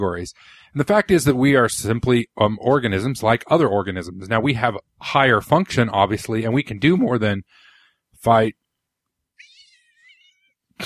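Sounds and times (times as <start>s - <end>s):
speech: 0.0s - 7.6s, 8.2s - 8.6s
cat meowing: 9.4s - 10.5s.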